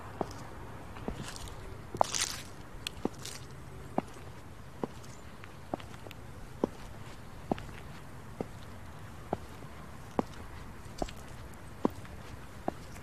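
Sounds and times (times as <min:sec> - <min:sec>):
footsteps crunching on a forest path: 0:00.0 - 0:13.0
rustle: 0:00.0 - 0:13.0.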